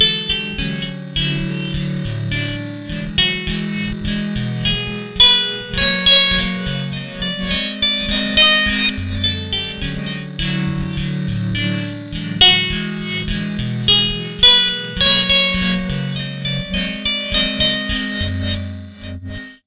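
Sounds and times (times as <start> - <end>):
guitar loop: 0.0 - 19.4.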